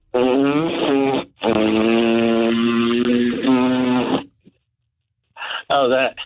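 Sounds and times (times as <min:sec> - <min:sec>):
voice imitating a motorboat engine with a lip trill: 0:00.1 - 0:04.4
speech: 0:05.8 - 0:06.2.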